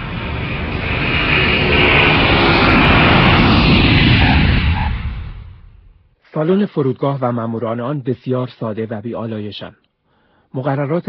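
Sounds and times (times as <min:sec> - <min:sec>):
airplane wheels rumbling on runway: 0:00.0 - 0:05.9
airplane landing: 0:00.0 - 0:06.0
speech: 0:06.4 - 0:09.8, 0:10.5 - 0:11.0.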